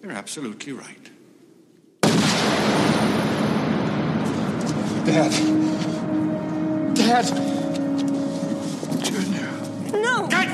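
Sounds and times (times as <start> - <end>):
speech: 0.0 - 1.2, 5.0 - 5.9, 7.0 - 7.6, 9.0 - 10.5
film gunshot sound effect: 2.0 - 5.3
long dense roaring decay of a film gunshot: 2.0 - 8.0.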